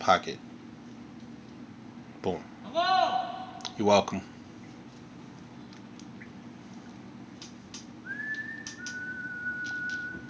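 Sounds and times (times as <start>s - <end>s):
speech: 0.0s - 0.5s, 2.2s - 4.3s
low hum: 0.0s - 10.2s
person whistling held notes: 8.0s - 10.2s.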